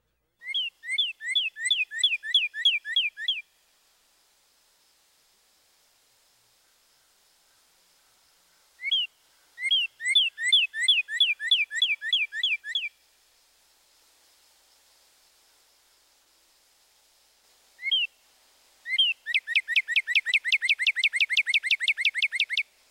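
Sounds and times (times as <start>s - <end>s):
northern cardinal singing two-syllable whistles: 0.4s - 3.6s, 8.8s - 13.1s, 17.8s - 18.2s, 18.8s - 22.7s.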